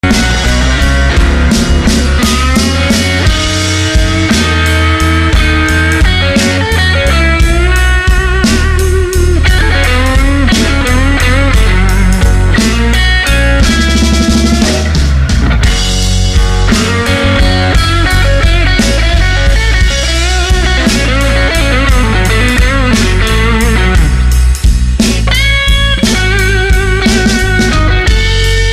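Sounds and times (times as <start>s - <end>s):
808 drum machine blues jam: 0.0s - 28.7s.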